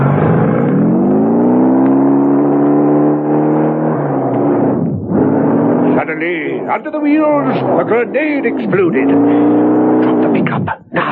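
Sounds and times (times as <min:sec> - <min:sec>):
motorbike engine revving as the rider races away: 0:00.0 - 0:11.1
speech: 0:06.1 - 0:09.7.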